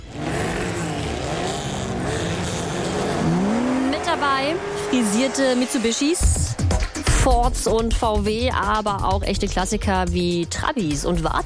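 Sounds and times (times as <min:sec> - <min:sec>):
rally car engines of tuned and classic cars revving hard: 0:00.0 - 0:06.6
speech: 0:04.2 - 0:06.6, 0:07.2 - 0:11.4.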